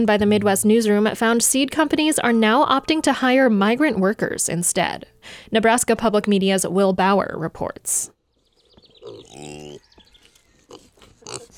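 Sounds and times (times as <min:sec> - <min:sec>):
speech: 0:00.0 - 0:08.2
birds chirping faintly: 0:08.0 - 0:11.5
Kune Kune pigs grunting on a pig farm in Iowa: 0:08.9 - 0:11.5.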